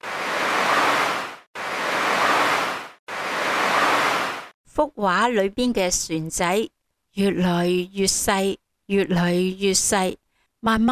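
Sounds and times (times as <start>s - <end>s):
waves surging: 0.0s - 4.6s
speech: 4.8s - 10.9s.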